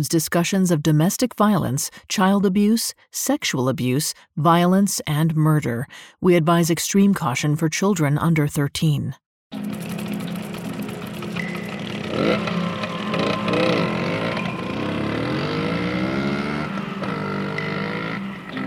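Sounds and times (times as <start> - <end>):
speech: 0.0 - 9.8, 12.2 - 12.6
small two-stroke moped engine idling and revving: 9.5 - 18.6.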